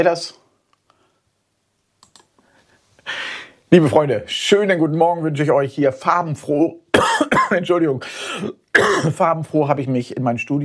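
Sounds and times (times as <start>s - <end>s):
speech: 0.0s - 0.4s, 3.1s - 10.6s
low hiss: 0.0s - 10.6s
buttons being pressed in a studio: 2.0s - 2.3s.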